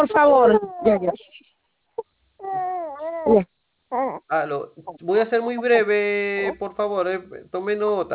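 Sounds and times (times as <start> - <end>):
baby crying: 0.0 - 1.2, 2.4 - 4.3
speech: 0.0 - 1.5, 3.2 - 8.1.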